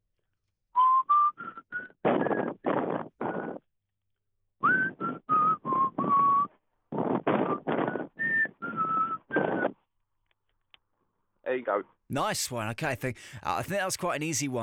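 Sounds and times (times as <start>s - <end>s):
man whistling an old song tune over a telephone line: 0.8s - 2.6s, 4.6s - 6.6s, 7.4s - 9.8s
speech: 11.6s - 14.6s.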